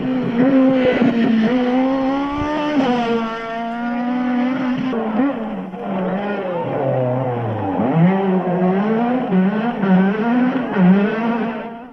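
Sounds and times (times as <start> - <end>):
rally car engine racing through gear changes: 0.0 - 11.9.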